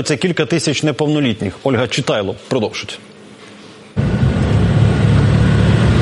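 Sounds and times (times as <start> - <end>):
speech: 0.0 - 3.1
car engine and road roar pulling up: 4.0 - 5.9.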